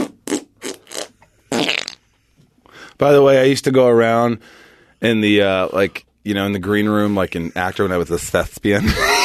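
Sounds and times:
man making armpit farts: 0.0s - 2.1s
speech: 3.0s - 9.1s.

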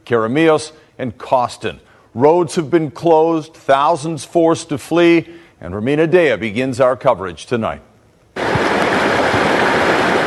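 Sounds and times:
speech: 0.1s - 7.9s
roar of rushing floodwater: 8.4s - 10.2s.

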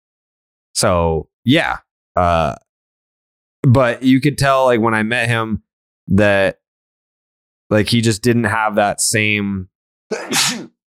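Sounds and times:
speech: 0.8s - 2.6s, 3.6s - 6.6s, 7.7s - 10.7s
sneeze: 10.1s - 10.8s.

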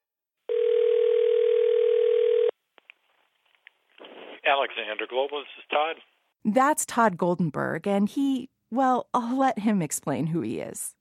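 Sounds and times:
loud steady telephone tone: 0.5s - 2.5s
speech: 4.5s - 10.9s.

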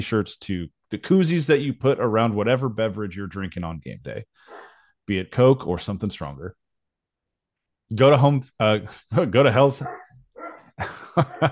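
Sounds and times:
speech: 0.0s - 6.6s, 7.9s - 10.0s, 10.8s - 11.4s
dog yelping and barking sharply: 9.8s - 10.8s
laughter: 10.8s - 11.4s.

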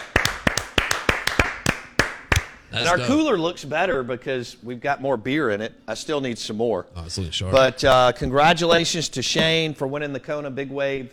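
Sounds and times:
audience clapping at a prize-giving for a cooler contest: 0.0s - 2.9s
speech: 2.8s - 11.1s.

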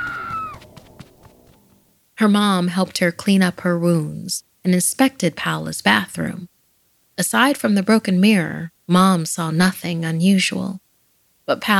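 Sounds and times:
girl screaming: 0.0s - 0.6s
speech: 2.2s - 6.5s, 7.2s - 10.8s, 11.5s - 11.7s.

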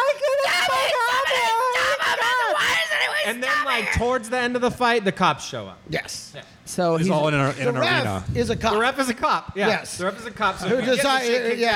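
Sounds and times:
voice mimicking a girl screaming and crying: 0.0s - 3.9s
speech: 3.3s - 11.7s.

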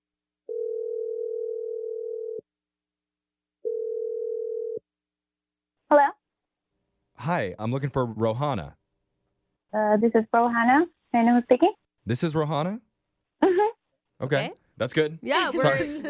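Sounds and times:
telephone ringback tone: 0.5s - 2.4s, 3.6s - 4.8s
speech: 7.3s - 8.8s, 9.7s - 12.8s, 14.2s - 16.0s.

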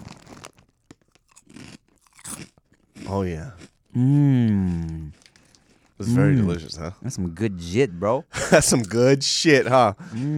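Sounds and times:
truffle-flavored Korean crackers crunching: 0.0s - 4.0s, 4.6s - 6.0s
wet chewing of crackers: 0.0s - 4.0s, 4.6s - 6.0s
speech: 3.1s - 5.2s, 6.0s - 10.3s.

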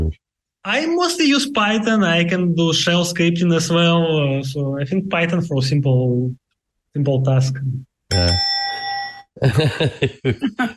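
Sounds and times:
speech: 0.1s - 8.5s, 9.4s - 10.7s
winning bell ringing: 8.1s - 9.5s
laughter: 9.4s - 10.7s.

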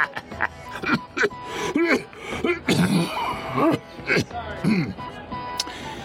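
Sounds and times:
harsh chesty coughing from a chest affliction: 0.7s - 5.0s.

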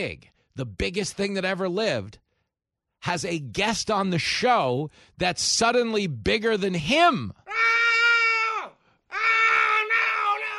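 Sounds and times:
speech: 0.0s - 2.2s, 3.0s - 7.8s
person screaming: 7.4s - 10.5s
person crying: 7.5s - 10.5s.

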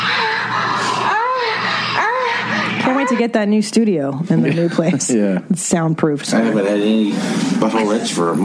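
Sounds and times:
person screaming and moaning during sex: 0.1s - 3.1s
speech: 3.1s - 8.4s.

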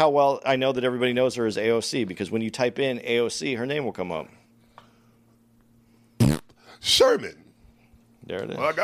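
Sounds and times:
speech: 0.0s - 4.4s, 6.8s - 7.4s, 8.2s - 8.8s
fart: 6.2s - 6.6s.

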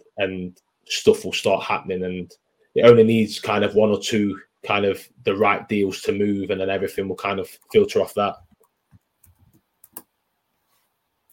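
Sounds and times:
speech: 0.2s - 8.5s
typing on a computer keyboard: 8.5s - 10.1s.

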